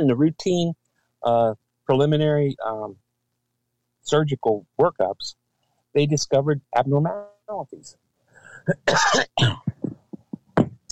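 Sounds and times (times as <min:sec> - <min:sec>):
speech: 0:00.0 - 0:03.0, 0:04.0 - 0:08.0, 0:08.6 - 0:09.8
throat-clearing hacks: 0:08.4 - 0:10.8
person coughing: 0:08.6 - 0:10.6.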